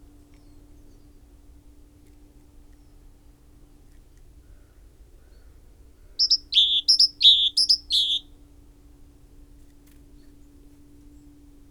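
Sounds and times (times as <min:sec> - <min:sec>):
quiet background hum: 0:00.0 - 0:11.6
Great tit Parus major giving two-part notes: 0:06.2 - 0:08.2.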